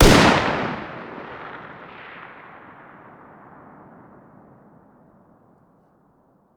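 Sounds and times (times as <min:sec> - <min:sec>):
distant 308 rifle fire: 0:00.0 - 0:03.7.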